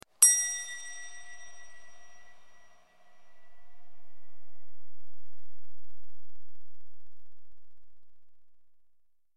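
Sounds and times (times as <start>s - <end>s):
single bell chime: 0.2s - 3.8s.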